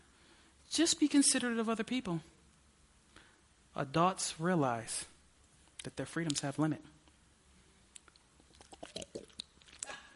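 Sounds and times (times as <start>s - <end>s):
speech: 0.8s - 2.4s, 3.8s - 5.1s, 5.8s - 7.0s
faint wet mouth clicks: 7.9s - 10.1s
person sipping a drink: 8.0s - 10.1s.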